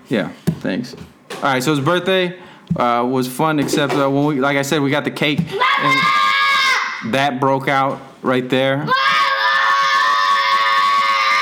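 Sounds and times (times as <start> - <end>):
speech: 0.1 - 6.2, 7.0 - 9.1
child yelling a shrill high-pitched shout: 5.5 - 7.0, 8.9 - 11.3.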